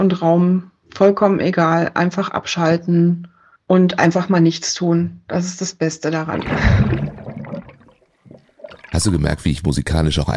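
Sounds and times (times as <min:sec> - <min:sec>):
speech: 0:00.0 - 0:07.0, 0:09.0 - 0:10.3
gurgling water bubbles: 0:06.3 - 0:09.3
water gushing: 0:06.3 - 0:09.4.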